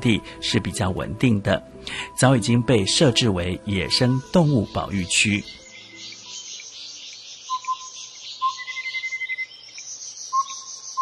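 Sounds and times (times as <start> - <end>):
speech: 0.0 - 5.6
steady high buzz of insects: 3.2 - 11.0
clear melodious bird calls: 4.0 - 11.0.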